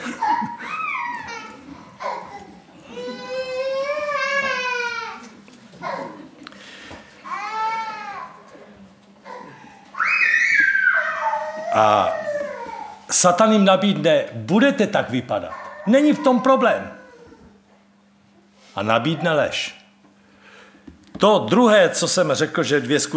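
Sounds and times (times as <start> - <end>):
baby crying: 0.2 - 6.2, 7.3 - 8.4, 9.2 - 13.1, 15.5 - 17.6
speech: 11.8 - 12.2, 13.1 - 17.0, 18.8 - 19.8, 21.2 - 23.1.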